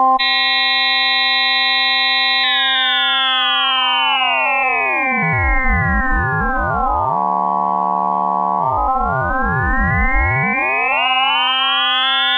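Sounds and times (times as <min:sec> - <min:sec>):
Hammond SK1 organ with ring modulator: 0:00.2 - 0:12.3.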